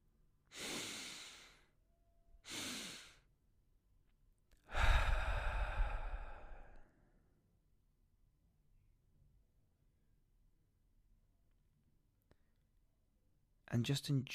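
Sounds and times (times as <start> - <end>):
deep slow breathing during a relaxation exercise: 0.5 - 1.8, 2.4 - 3.3, 4.6 - 7.2
speech: 13.7 - 14.3.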